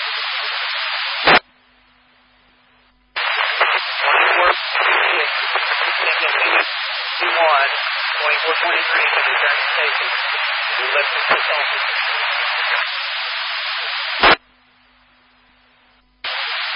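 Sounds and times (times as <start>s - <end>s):
garbled radio voice transmission: 0.0s - 1.4s, 3.2s - 14.4s, 16.2s - 16.7s.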